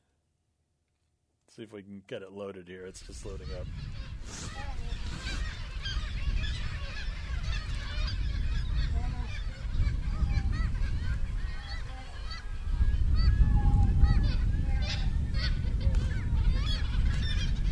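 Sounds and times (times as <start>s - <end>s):
speech: 1.6s - 4.7s
steady low rumble of wind or water: 2.9s - 17.7s
colony of cormorants squeaking and squawking: 3.2s - 17.7s.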